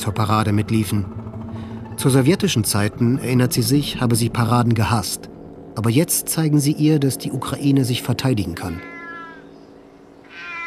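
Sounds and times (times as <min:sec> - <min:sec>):
speech: 0:00.0 - 0:01.2, 0:02.0 - 0:09.0
soft hum: 0:00.0 - 0:10.6
cat meowing in a courtyard: 0:08.7 - 0:10.6.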